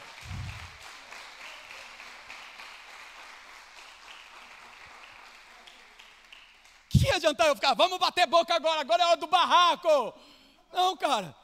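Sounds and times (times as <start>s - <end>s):
crowd clapping in applause: 0.0s - 7.1s
speech: 7.0s - 11.4s.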